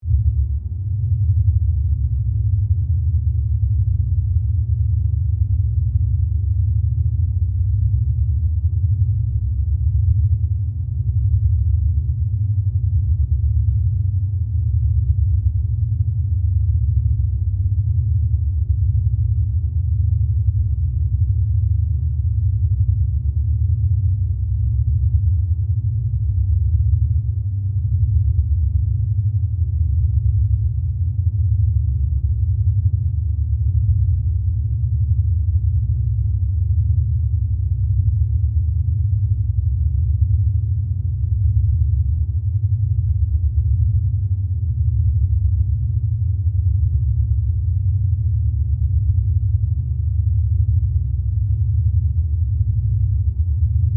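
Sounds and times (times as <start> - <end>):
large science fiction carrier spaceship rumble: 0.0 - 53.9.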